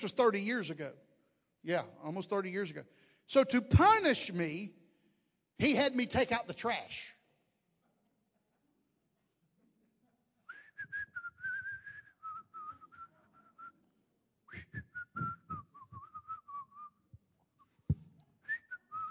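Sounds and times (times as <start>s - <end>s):
speech: 0.0s - 4.8s, 5.6s - 7.2s
person whistling a tune while taking out the trash: 10.5s - 13.8s, 14.5s - 17.8s, 18.4s - 19.0s
soft knocks: 17.9s - 18.2s.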